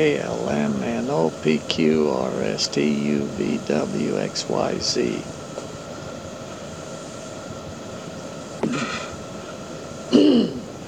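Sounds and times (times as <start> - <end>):
speech: 0.0 - 5.4
faint hiss: 0.0 - 10.8
person clearing throat: 8.6 - 9.1, 10.1 - 10.7.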